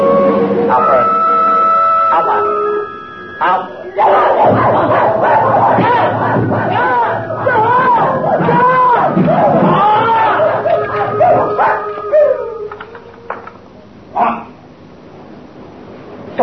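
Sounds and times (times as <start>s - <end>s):
commotion: 0.0s - 15.1s
dogs barking and yelping: 3.9s - 13.1s.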